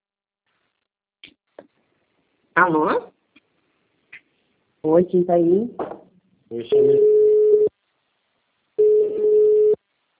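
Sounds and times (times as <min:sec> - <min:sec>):
speech: 0:02.6 - 0:03.1, 0:04.8 - 0:07.1
telephone busy tone after a dropped call: 0:06.7 - 0:07.7, 0:08.8 - 0:09.8.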